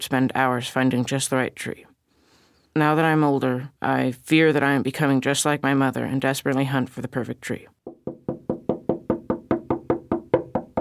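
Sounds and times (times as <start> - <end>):
speech: 0.0 - 1.9, 2.8 - 7.8
pounding on a wooden bedroom door: 7.8 - 10.7.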